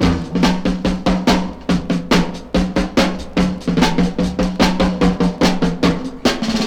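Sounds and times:
drum beat: 0:00.0 - 0:06.6.

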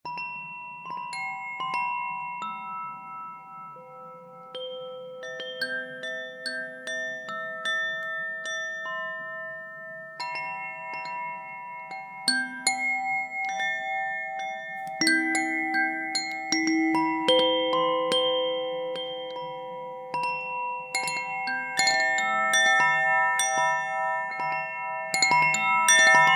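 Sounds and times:
wind chimes in autumn twilight: 0:00.0 - 0:26.3.

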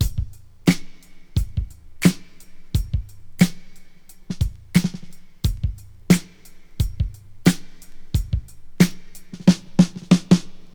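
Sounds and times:
89 bpm 2000s-style drum groove in E: 0:00.0 - 0:10.7.

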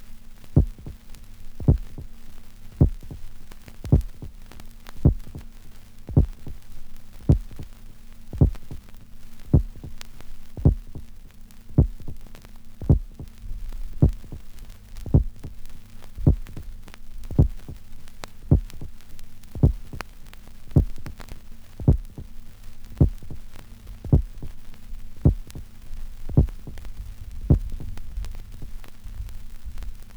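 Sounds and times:
electronic heartbeats from vinyl on a turntable: 0:00.6 - 0:01.0, 0:01.6 - 0:02.1, 0:02.8 - 0:03.3, 0:03.9 - 0:04.3, 0:05.0 - 0:05.5, 0:06.1 - 0:06.6, 0:07.3 - 0:07.7, 0:08.4 - 0:08.8, 0:09.5 - 0:10.0, 0:10.6 - 0:11.1, 0:11.8 - 0:12.2, 0:12.8 - 0:13.4, 0:14.0 - 0:14.5, 0:15.1 - 0:15.6, 0:16.2 - 0:16.6, 0:17.3 - 0:17.8, 0:18.5 - 0:18.9, 0:19.6 - 0:20.0, 0:20.8 - 0:21.1, 0:21.8 - 0:22.3, 0:23.0 - 0:23.4, 0:24.0 - 0:24.6, 0:25.2 - 0:25.7, 0:26.3 - 0:28.7.

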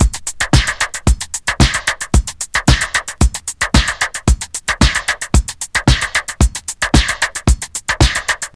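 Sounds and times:
drum beat in D sharp key: 0:00.0 - 0:08.5.

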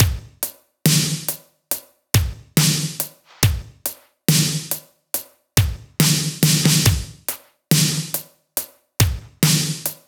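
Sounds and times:
70 bpm drum beat in F sharp: 0:00.0 - 0:10.0.

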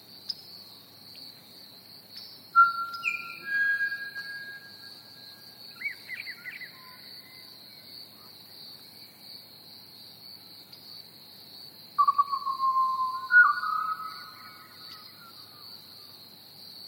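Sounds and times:
crickets chirping: 0:00.0 - 0:16.8
pied butcherbird fluty whistles: 0:02.6 - 0:05.0, 0:12.0 - 0:14.6.

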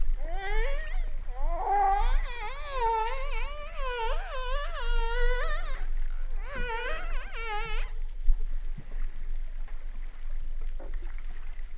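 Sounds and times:
humpback whale song: 0:00.0 - 0:08.3
low water noise: 0:00.0 - 0:11.7.

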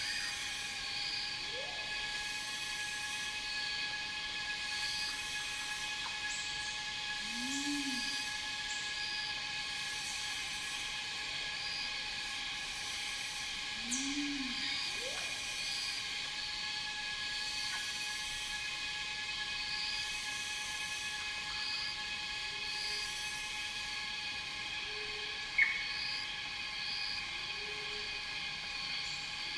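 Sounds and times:
cicadas droning in a rainforest: 0:00.0 - 0:29.5
bird hooting: 0:07.2 - 0:08.4, 0:13.8 - 0:15.5.

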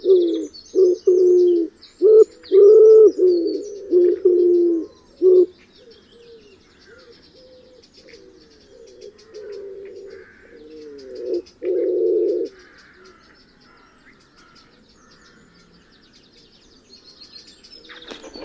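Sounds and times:
wood pigeon cooing: 0:00.0 - 0:12.6, 0:17.9 - 0:18.4
small birds chirping: 0:00.0 - 0:18.4.

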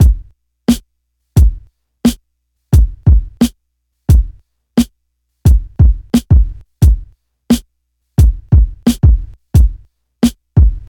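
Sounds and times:
88 bpm breakbeat drum loop in A: 0:00.0 - 0:00.8, 0:01.4 - 0:10.8.

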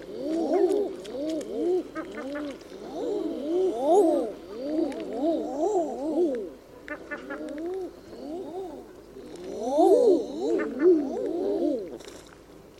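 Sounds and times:
common eiders cooing in tundra habitat: 0:00.0 - 0:12.0.

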